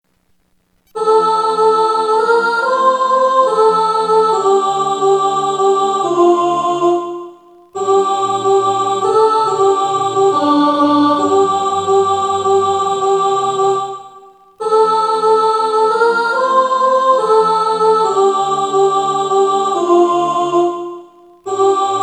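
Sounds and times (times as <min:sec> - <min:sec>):
soprano singing: 0:01.0 - 0:22.0.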